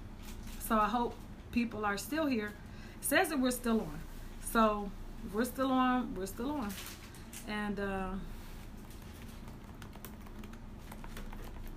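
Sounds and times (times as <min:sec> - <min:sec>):
low steady hum: 0:00.0 - 0:11.7
speech: 0:00.7 - 0:08.3
rapid typing on a computer keyboard: 0:08.8 - 0:11.7.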